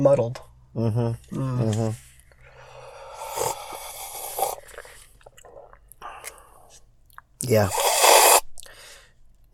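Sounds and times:
speech: 0.0s - 2.1s, 7.4s - 7.8s
slurping coffee while tasting it: 3.1s - 5.7s, 7.7s - 8.5s.

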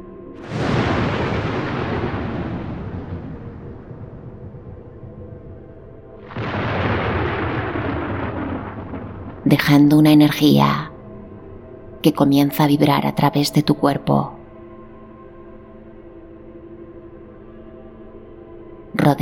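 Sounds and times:
thunderclaps from a lightning strike: 0.4s - 10.8s
speech: 9.6s - 10.9s, 12.0s - 14.4s, 19.1s - 19.2s.

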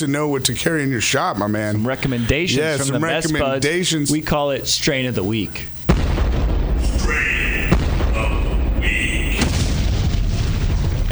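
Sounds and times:
laughter: 0.0s - 5.7s, 6.8s - 9.7s
speech: 0.0s - 5.8s
booming explosion sound effects for a segment intro: 5.9s - 11.0s.

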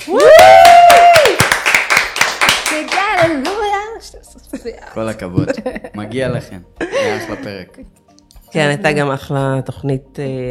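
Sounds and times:
speech: 0.0s - 0.5s, 4.4s - 10.4s
voices whooping and cheering: 0.0s - 1.6s
hand claps: 0.0s - 3.8s.

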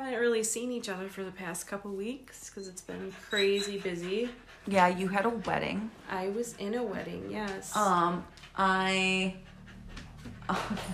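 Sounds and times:
speech: 0.1s - 9.5s, 10.5s - 10.9s
dog panting and whining: 2.4s - 10.9s.

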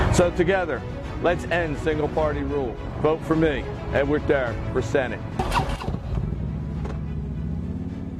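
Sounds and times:
speech: 0.2s - 5.6s
Harley motorcycle engine with a deep throbbing low idle: 5.4s - 8.1s.

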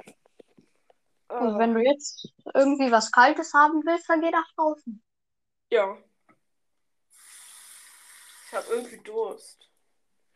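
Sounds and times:
speech: 1.4s - 5.1s, 5.7s - 6.1s, 8.5s - 9.7s
water running from a tap into a glass: 7.2s - 9.4s.

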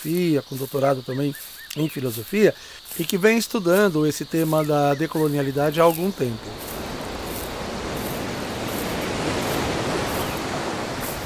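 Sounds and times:
speech: 0.0s - 6.8s
steady rushing surf from sea waves at a beach: 3.7s - 11.2s.

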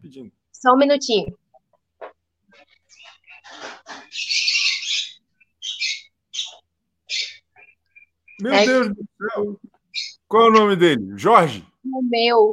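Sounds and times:
speech: 0.0s - 1.4s, 8.4s - 12.5s
pet birds chirping and squawking: 2.5s - 8.8s, 9.8s - 10.6s.

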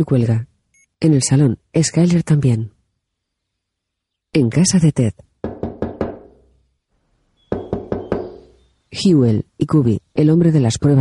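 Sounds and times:
speech: 0.0s - 2.8s, 4.3s - 5.3s, 9.0s - 11.0s
quick firm knocks on a wooden door: 5.4s - 6.4s, 7.5s - 8.5s.

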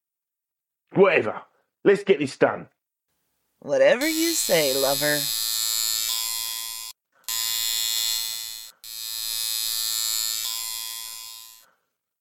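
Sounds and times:
speech: 1.0s - 2.8s, 3.6s - 5.6s
malfunctioning tattoo ink gun buzzing: 4.0s - 11.7s.

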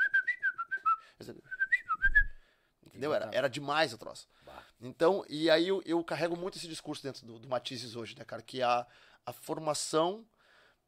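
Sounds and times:
person whistling a short lilting melody: 0.0s - 2.4s
speech: 1.2s - 1.5s, 3.0s - 10.3s.

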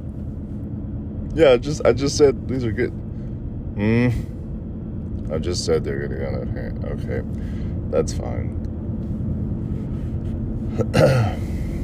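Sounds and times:
low hum: 0.0s - 11.8s
speech: 1.3s - 3.0s, 3.8s - 4.3s, 5.3s - 8.6s, 10.8s - 11.5s
person coughing: 10.8s - 11.6s.

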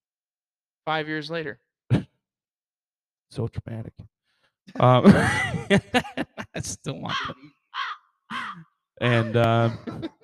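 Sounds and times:
speech: 0.8s - 1.6s, 3.3s - 7.6s, 8.6s - 10.2s
laughter: 4.8s - 7.4s, 8.3s - 10.2s
crow cawing: 7.1s - 8.6s.

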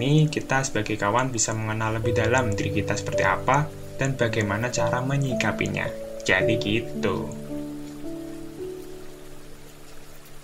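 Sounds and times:
speech: 0.0s - 7.4s
steady rain pattering: 0.0s - 10.4s.

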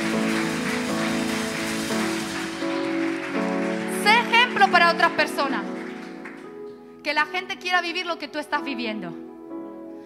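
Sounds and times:
audience applause: 0.0s - 6.7s
sustained music: 0.0s - 10.0s
speech: 4.9s - 5.8s, 7.0s - 9.2s.

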